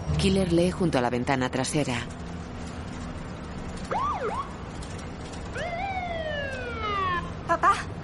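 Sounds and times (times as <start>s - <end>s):
speech: 0.2s - 2.2s
police patrol car siren wailing: 3.9s - 4.6s, 5.5s - 7.8s.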